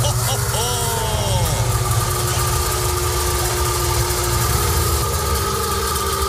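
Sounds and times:
laughter: 0:00.0 - 0:04.5
Wartburg Melkus RS 1000 East German sports car engine rumbling: 0:00.0 - 0:06.2.

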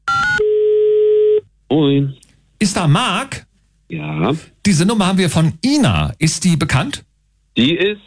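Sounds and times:
steady telephone tone: 0:00.1 - 0:01.5
speech: 0:01.7 - 0:08.0.

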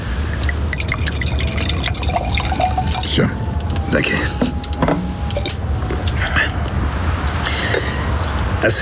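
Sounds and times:
low hum: 0:00.0 - 0:08.8
drink poured into a glass as a refill: 0:00.4 - 0:03.1
speech: 0:03.2 - 0:05.0, 0:08.6 - 0:08.8.

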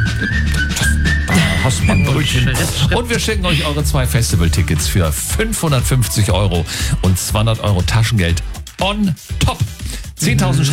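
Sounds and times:
person whistling cheerfully while walking: 0:00.0 - 0:02.6
speech: 0:01.7 - 0:10.7.

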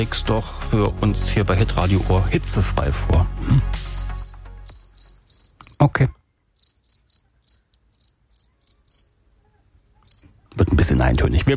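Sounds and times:
speech: 0:00.0 - 0:03.8, 0:05.8 - 0:06.2, 0:10.8 - 0:11.5
cricket chirping in short high-pitched pulses: 0:03.9 - 0:05.9, 0:06.6 - 0:09.1, 0:10.0 - 0:10.3.

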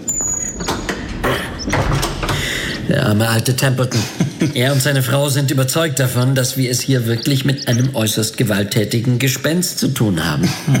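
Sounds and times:
door being closed: 0:00.0 - 0:04.8
laughter: 0:02.9 - 0:08.6, 0:10.1 - 0:10.7
speech: 0:02.9 - 0:10.7.

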